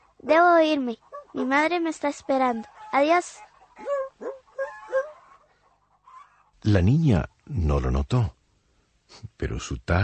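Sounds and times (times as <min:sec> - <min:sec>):
speech: 0:00.2 - 0:03.5, 0:06.6 - 0:08.4, 0:09.1 - 0:10.0
little dog whimpering and whining: 0:02.7 - 0:05.4.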